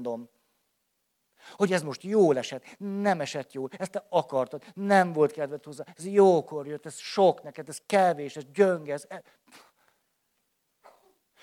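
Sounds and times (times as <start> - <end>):
speech: 0.0 - 0.4, 1.4 - 9.7
person sniffing: 9.4 - 10.0, 10.8 - 11.4
person sneezing: 10.8 - 11.4.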